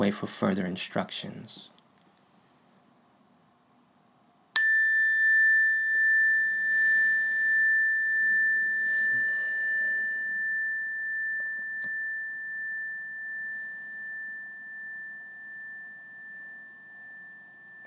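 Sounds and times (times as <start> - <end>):
speech: 0.0 - 1.7
meditation bell struck and ringing: 4.6 - 17.8.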